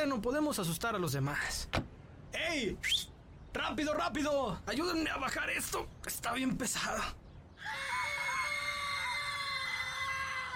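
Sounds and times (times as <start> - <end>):
speech: 0.0 - 1.8, 2.4 - 7.8
crowd of people screaming in terror: 7.6 - 10.5.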